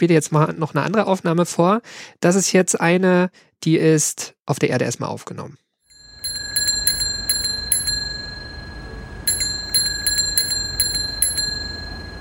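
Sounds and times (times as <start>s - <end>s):
speech: 0.0s - 5.6s
bicycle bell ringing: 5.9s - 12.1s.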